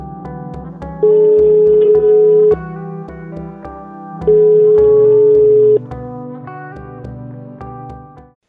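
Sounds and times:
low rhythmic tone: 0.9s - 3.6s, 4.2s - 5.8s
outgoing phone call ringing tone with long steady electronic beeps: 1.0s - 2.7s, 4.3s - 5.8s.

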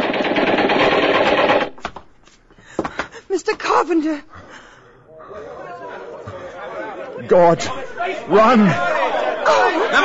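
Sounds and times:
gunfire: 0.0s - 1.8s
speech: 3.3s - 4.4s, 7.3s - 10.0s
laughter: 5.1s - 10.0s.

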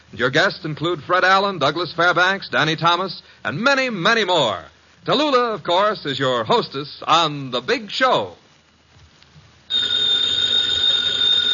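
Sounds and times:
speech: 0.1s - 8.4s
telephone bell ringing: 9.7s - 11.5s.

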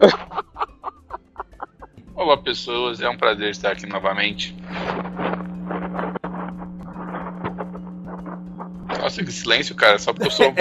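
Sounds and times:
speech: 0.0s - 0.2s, 2.5s - 4.9s, 9.1s - 10.6s
laughter: 0.0s - 2.7s, 10.2s - 10.6s
steady low electrical hum: 2.3s - 10.6s
microphone being handled and adjusted upward: 4.6s - 9.0s.

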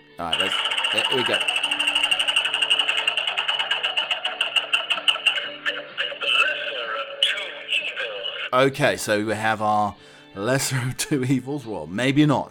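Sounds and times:
speech: 0.2s - 1.6s, 8.5s - 12.5s
roulette wheel spinning with ticking clicks: 0.2s - 5.9s
laughter: 0.2s - 8.6s.

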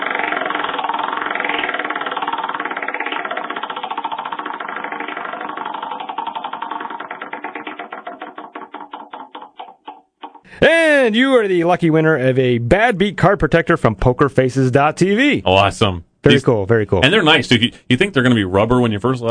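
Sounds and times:
prize wheel spinning with its clicker ratcheting: 0.0s - 10.5s
speech: 10.5s - 19.2s.

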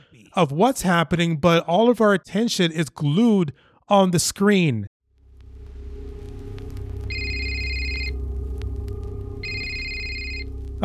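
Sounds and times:
speech: 0.3s - 4.9s
phone ringing with two bright electronic tones for an incoming call: 7.1s - 8.2s, 9.4s - 10.8s.

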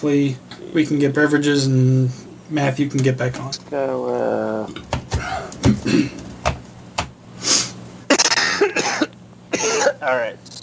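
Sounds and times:
speech: 0.0s - 5.0s, 9.6s - 10.6s
knocks: 4.8s - 7.2s
person coughing with short harsh bursts: 5.2s - 6.2s, 8.1s - 10.0s.

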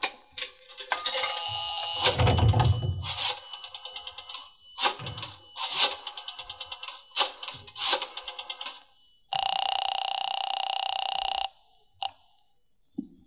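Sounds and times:
electronic telephone ringing tone on the line: 0.8s - 12.2s
rotary telephone dial clicking: 3.1s - 8.8s.

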